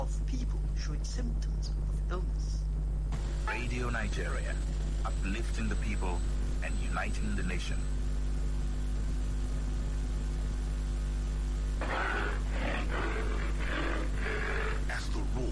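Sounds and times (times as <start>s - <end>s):
hiss and hum: 0.0s - 15.5s
speech: 0.9s - 8.0s
lion roaring in deep grunting bursts: 11.8s - 15.0s.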